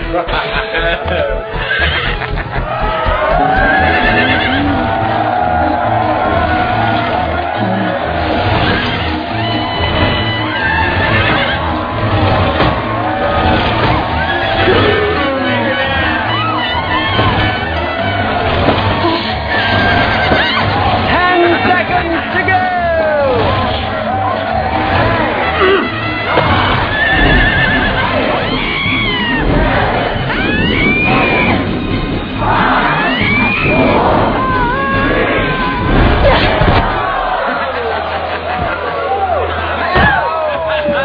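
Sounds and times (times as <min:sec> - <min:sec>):
horse neighing and whinnying: 0:00.0 - 0:05.3, 0:08.4 - 0:21.1, 0:25.0 - 0:31.7
laughter: 0:00.0 - 0:31.6, 0:32.4 - 0:41.0
crowd noise: 0:00.0 - 0:41.0
people shouting: 0:00.0 - 0:41.0
speech: 0:00.1 - 0:02.8.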